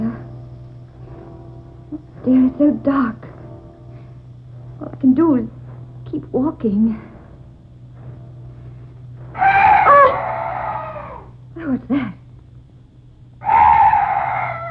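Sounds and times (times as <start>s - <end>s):
low steady hum: 0.0s - 14.6s
speech: 1.9s - 3.2s, 5.0s - 7.1s, 11.7s - 12.2s
night bird with long wavering shrieks: 9.4s - 11.3s, 13.4s - 14.6s.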